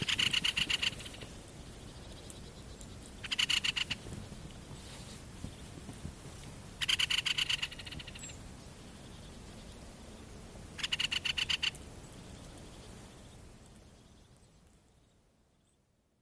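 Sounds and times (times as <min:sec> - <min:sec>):
great spotted woodpecker giving rapid scratchy rattling chatter calls: 0:00.0 - 0:01.2, 0:01.9 - 0:04.7, 0:06.8 - 0:08.4, 0:10.8 - 0:11.8.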